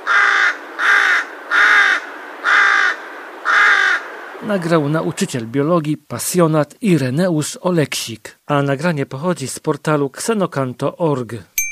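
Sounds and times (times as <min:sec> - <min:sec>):
rook cawing in a city park in Tychy: 0:00.0 - 0:04.7
speech: 0:04.4 - 0:11.5.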